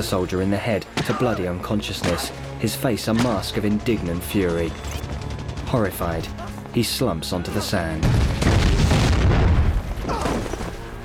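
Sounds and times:
speech: 0.0 - 5.1, 5.7 - 8.3
mortar fire exploding across a battlefield: 8.0 - 10.9.

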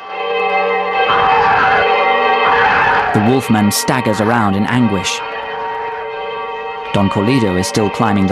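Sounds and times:
church bells swinging and ringing in a church bell tower: 0.0 - 8.3
speech: 3.2 - 5.3, 7.0 - 8.3.

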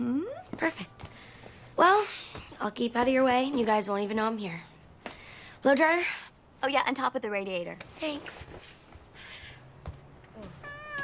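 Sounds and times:
low noise: 0.0 - 11.0
speech: 0.6 - 1.0, 1.8 - 4.7, 5.6 - 8.8
black cat meowing: 10.4 - 11.0.

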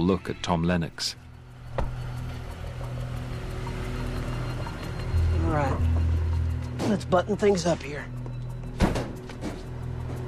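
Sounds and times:
speech: 0.0 - 1.2, 5.5 - 5.9, 6.9 - 8.2
steady low engine-like hum: 1.2 - 7.4
van rear doors slamming shut: 8.8 - 9.6.

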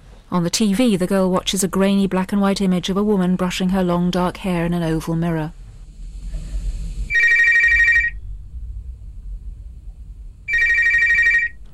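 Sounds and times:
low hum: 0.0 - 11.7
speech: 0.3 - 5.6
telephone ringing with trilling electronic tone: 7.1 - 8.2, 10.5 - 11.6.

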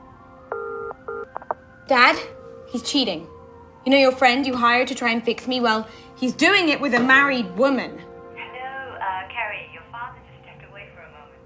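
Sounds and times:
cell phone keypad dialing tones: 0.5 - 1.6
speech: 1.9 - 8.1.

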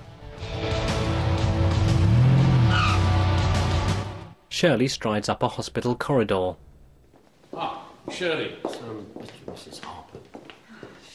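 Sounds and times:
car engine revving hard as it speeds off: 0.7 - 4.3
car tires squealing: 2.0 - 3.4
speech: 4.6 - 6.7, 8.1 - 10.4.

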